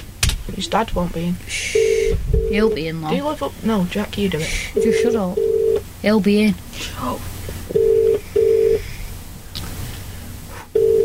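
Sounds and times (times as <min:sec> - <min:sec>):
faint hiss: 0:00.0 - 0:11.0
speech: 0:00.5 - 0:07.8
phone ringing tone heard down the line: 0:01.7 - 0:02.8, 0:04.8 - 0:05.8, 0:07.7 - 0:08.8, 0:10.8 - 0:11.0.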